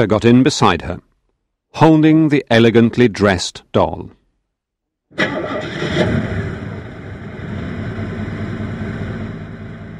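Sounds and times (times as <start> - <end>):
speech: 0.0 - 1.1, 1.7 - 4.2, 5.1 - 6.3
motor car engine starting and idling: 5.1 - 9.9.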